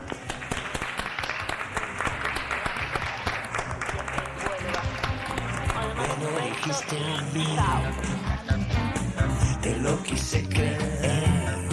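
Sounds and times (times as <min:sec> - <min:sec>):
crowd applause given as a show of support: 0:00.0 - 0:08.4
speech: 0:06.6 - 0:08.7, 0:09.7 - 0:11.6.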